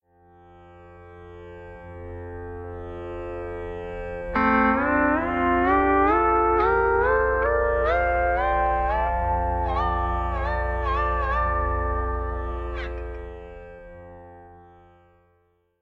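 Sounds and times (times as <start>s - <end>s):
pedal steel sustained drone: 3.6s - 14.6s.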